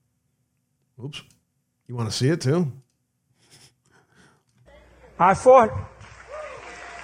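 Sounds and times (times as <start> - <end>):
speech: 1.0 - 2.8, 5.2 - 5.9
crowd clapping steadily and loudly: 5.6 - 7.0
person whooping: 6.3 - 7.0.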